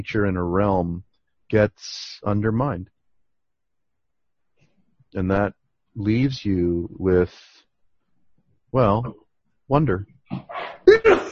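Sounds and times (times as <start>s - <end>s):
speech: 0.0s - 3.0s, 5.1s - 7.6s, 8.7s - 11.3s
person sneezing: 10.3s - 11.3s.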